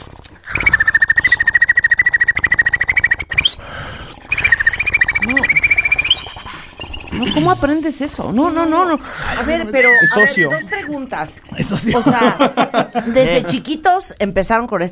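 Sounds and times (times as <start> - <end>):
beatboxed whistle combined with an inward click roll: 0.4 - 3.7, 4.3 - 7.4
speech: 7.2 - 14.9
laughter: 9.3 - 11.0, 11.6 - 13.6.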